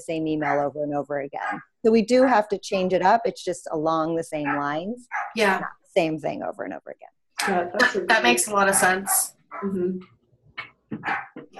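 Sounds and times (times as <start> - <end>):
speech: 0.0 - 11.5
pet dog barking and yipping: 4.5 - 5.4.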